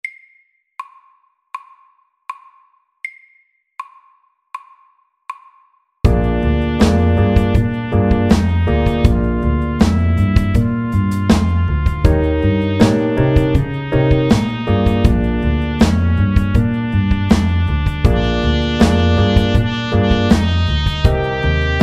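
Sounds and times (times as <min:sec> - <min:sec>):
chromatic blues: 0:06.1 - 0:21.8.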